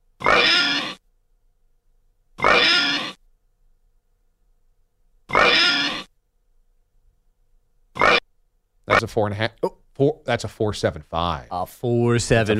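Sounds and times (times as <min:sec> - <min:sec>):
person imitating pig with snorting oinks: 0:00.2 - 0:01.0, 0:02.4 - 0:03.2, 0:05.3 - 0:06.1, 0:08.0 - 0:08.2, 0:08.9 - 0:09.9
speech: 0:09.0 - 0:12.5.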